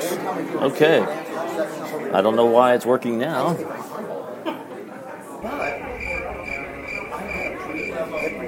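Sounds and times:
murmuring and indistinct voices: 0:00.0 - 0:08.4
speech: 0:00.4 - 0:03.9
crickets chirping: 0:05.4 - 0:08.4.

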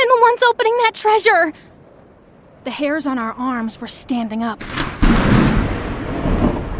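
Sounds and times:
speech: 0:00.4 - 0:01.7, 0:02.6 - 0:04.9
steady wash of storm noise: 0:01.7 - 0:06.7
deep rumbling roll of thunder during a thunderstorm: 0:01.8 - 0:06.7.

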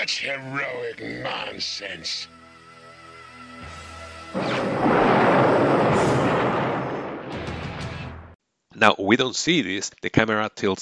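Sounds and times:
speech: 0:00.0 - 0:02.4, 0:08.8 - 0:10.8
cannon blast explosion: 0:04.4 - 0:08.4.

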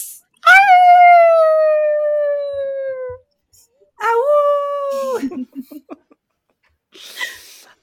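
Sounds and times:
people imitating a howling dog chorus: 0:00.4 - 0:03.2, 0:04.0 - 0:05.2.

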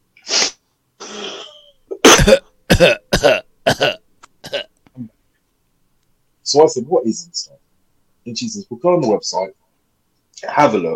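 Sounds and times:
person coughing: 0:01.0 - 0:04.7
speech: 0:06.5 - 0:07.6, 0:08.2 - 0:09.6, 0:10.4 - 0:10.9.

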